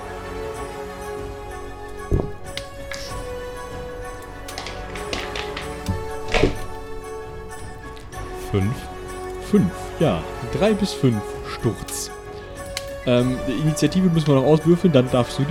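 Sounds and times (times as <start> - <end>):
two six-sided dice rolled on a table: 4.5 - 6.5
speech: 8.5 - 8.9, 9.5 - 12.2, 13.0 - 15.4.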